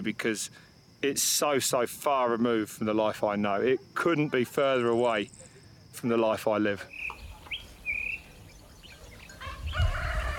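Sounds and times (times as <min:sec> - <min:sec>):
speech: 0:00.0 - 0:07.1
rooster crowing: 0:09.3 - 0:10.3.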